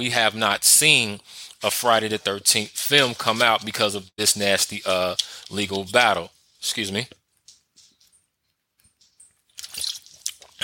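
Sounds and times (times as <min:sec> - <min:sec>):
speech: 0:00.0 - 0:07.2
wet mouth clicks and smacks while drinking: 0:08.8 - 0:10.6.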